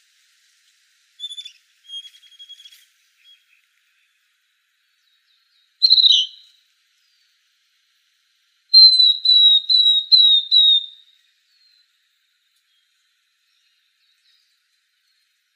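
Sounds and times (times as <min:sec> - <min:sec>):
Northern beardless-tyrannulet calls in Arizona: 0:01.2 - 0:03.4, 0:05.8 - 0:06.5, 0:08.8 - 0:11.0.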